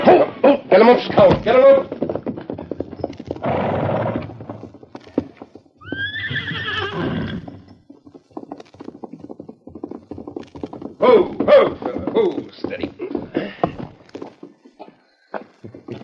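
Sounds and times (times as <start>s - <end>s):
horse whinnying: 0.0s - 8.0s, 10.9s - 12.5s
galloping hooves: 0.0s - 16.0s.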